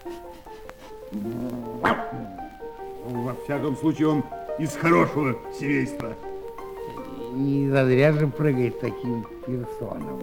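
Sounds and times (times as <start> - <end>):
speech: 0.0 - 2.4, 3.1 - 6.3, 7.4 - 10.2
dog yipping and barking: 1.7 - 2.3.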